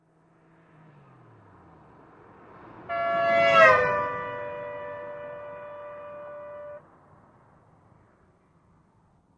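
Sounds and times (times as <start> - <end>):
cars passing by with Doppler effect: 0.0 - 9.3
car horn passing by with Doppler effect: 2.8 - 6.8.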